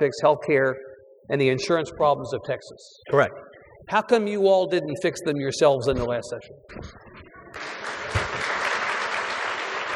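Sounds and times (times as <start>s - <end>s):
speech: 0.0s - 7.0s
audience clapping: 7.6s - 9.9s.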